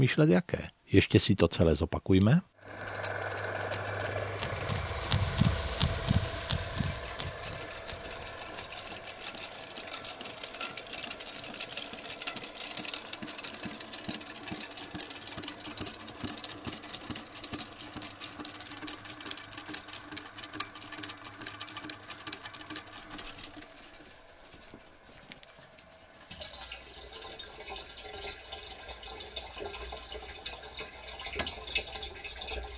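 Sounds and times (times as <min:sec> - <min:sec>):
speech: 0:00.0 - 0:03.0
small plunger pump for drinking water knocking: 0:02.6 - 0:23.8, 0:28.0 - 0:32.7.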